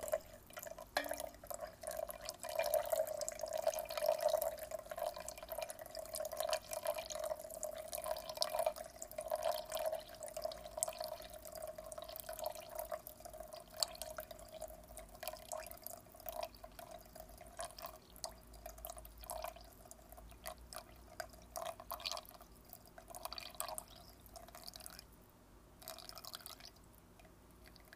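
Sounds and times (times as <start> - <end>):
water poured from a kettle in circles: 0.0 - 25.0, 25.8 - 26.8.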